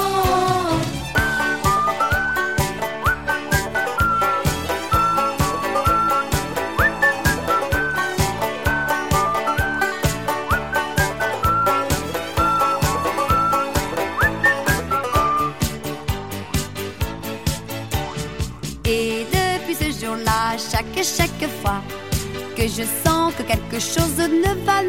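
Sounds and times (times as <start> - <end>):
full steady musical accompaniment: 0.0 - 24.8
bright whistled cheerful melody: 1.2 - 16.7
speech: 22.6 - 24.8.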